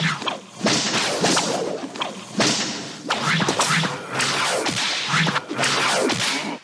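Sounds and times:
whip cracking: 0.0 - 6.6.

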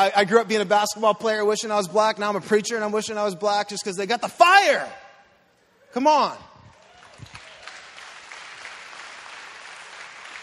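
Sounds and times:
speech: 0.0 - 5.0, 5.9 - 6.5
audience applause: 6.7 - 10.4.

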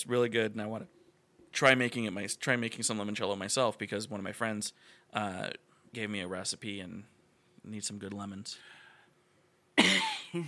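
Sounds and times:
speech: 0.0 - 8.8, 9.8 - 10.4
person coughing: 9.8 - 10.4.

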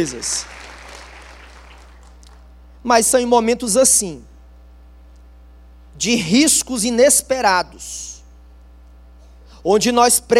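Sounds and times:
speech: 0.0 - 0.6, 2.8 - 4.3, 6.0 - 8.1, 9.6 - 10.3
crowd clapping: 0.0 - 2.5
low electrical hum: 0.0 - 10.3.

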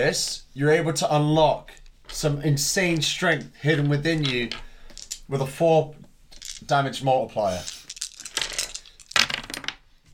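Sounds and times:
speech: 0.0 - 4.7, 5.3 - 6.0, 6.7 - 7.8
dice tumbling and bouncing across a tabletop: 1.6 - 5.3, 6.3 - 6.8, 7.4 - 9.9.

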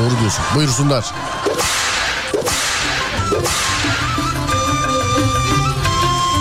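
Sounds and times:
speech: 0.3 - 1.7
loud snapping whip cracks: 1.4 - 4.2
steady music with sustained tones: 2.4 - 6.3.

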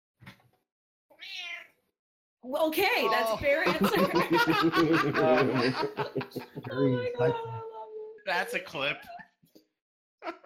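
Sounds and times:
cat meowing: 1.1 - 1.8
speech: 2.4 - 9.2
laughter: 3.1 - 7.6.

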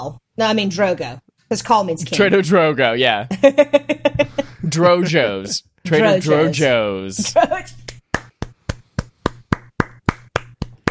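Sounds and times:
speech: 0.0 - 8.0
hands clapping: 7.8 - 10.8.

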